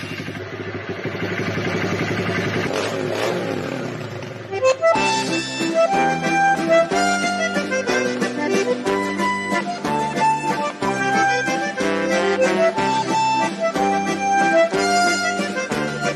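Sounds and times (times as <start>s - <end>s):
motorcycle engine revving as a rider arrives: 0.0s - 5.0s
lively band music with bright melodic notes: 4.6s - 16.1s.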